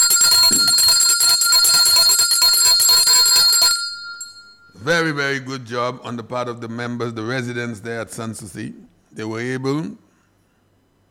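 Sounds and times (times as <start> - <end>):
bright loud bell ringing rapidly: 0.0 - 4.8
speech: 4.9 - 10.0.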